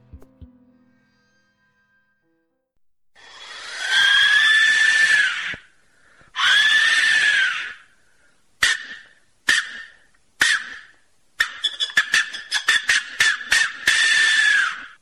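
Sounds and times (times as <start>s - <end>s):
Aztec death whistle shrieking: 3.2s - 5.7s, 6.4s - 7.9s, 8.6s - 15.0s.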